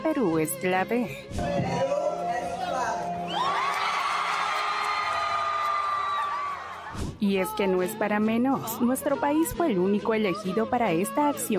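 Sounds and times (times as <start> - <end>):
speech: 0.0 - 2.0, 7.2 - 11.5
large crowd screaming and cheering: 3.2 - 7.1.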